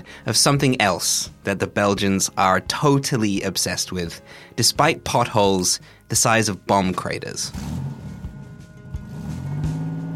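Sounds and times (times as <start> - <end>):
speech: 0.0 - 7.9
car engine rumbling as the vehicle drives: 7.5 - 10.1.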